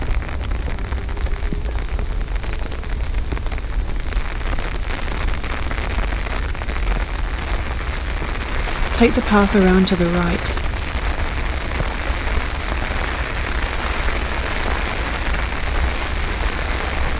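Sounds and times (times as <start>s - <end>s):
light drizzle pattering on surfaces: 0.0s - 17.1s
speech: 9.0s - 10.6s.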